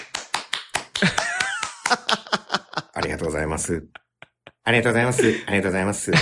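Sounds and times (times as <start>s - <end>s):
scattered live audience applause: 0.0s - 2.2s
speech: 1.0s - 1.2s, 3.0s - 4.0s, 4.7s - 6.2s
laughter: 1.0s - 6.2s.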